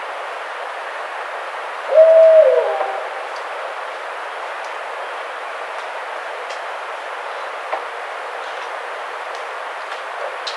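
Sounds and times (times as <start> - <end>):
barred owl calling one long even hoot: 1.9 - 3.5.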